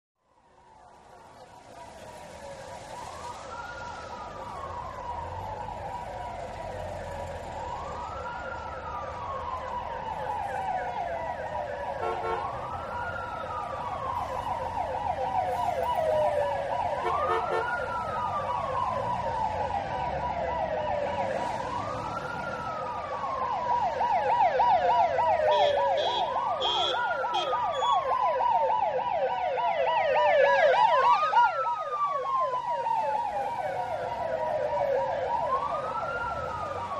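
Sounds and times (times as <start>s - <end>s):
traffic ambience: 0.2s - 36.9s
wailer siren passing into traffic: 0.2s - 36.9s.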